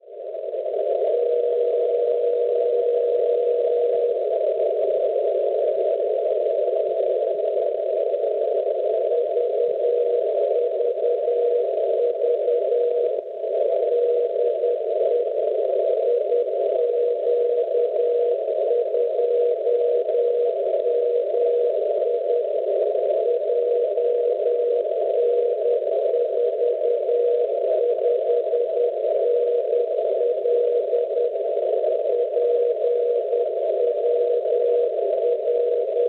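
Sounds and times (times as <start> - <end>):
630 meters OM radio beacon signal: 0.1 - 36.0.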